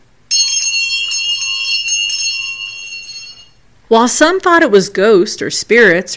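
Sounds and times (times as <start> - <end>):
bright high bells chiming: 0.3 - 3.6
speech: 3.9 - 6.1.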